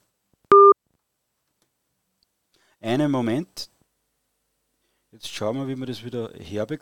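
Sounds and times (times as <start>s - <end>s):
telephone busy tone beep after phone call drops: 0.5s - 0.8s
speech: 2.8s - 3.7s, 5.2s - 6.7s.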